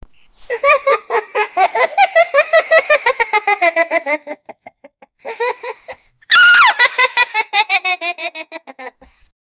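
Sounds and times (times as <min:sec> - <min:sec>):
child laughing: 0:00.5 - 0:09.1.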